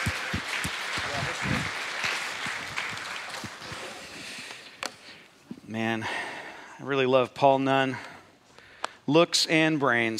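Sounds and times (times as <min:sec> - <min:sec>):
room full of people clapping: 0:00.0 - 0:04.7
speech: 0:05.7 - 0:06.2, 0:06.8 - 0:08.1, 0:09.1 - 0:10.1.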